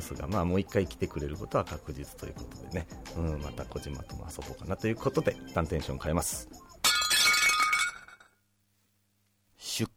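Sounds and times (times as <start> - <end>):
speech: 0.0 - 6.7, 9.8 - 9.9
ceramic plate shattering at home: 6.8 - 8.4.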